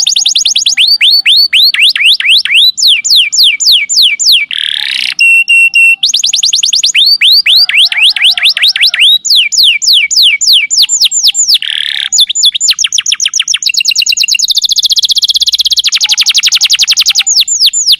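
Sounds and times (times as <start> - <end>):
lovebird shrill chirping lure call: 0.0 - 17.9.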